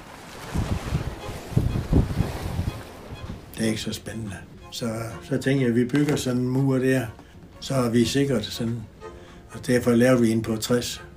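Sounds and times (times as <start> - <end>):
faint wash of water: 0.0 - 5.6
strong wind from the north buffeting the microphone: 0.4 - 3.5
speech: 3.6 - 8.9, 9.5 - 11.1.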